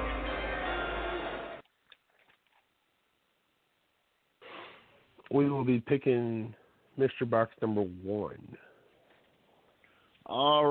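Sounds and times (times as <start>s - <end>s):
draft countdown music: 0.0s - 1.6s
speech: 5.3s - 8.7s, 10.3s - 10.6s.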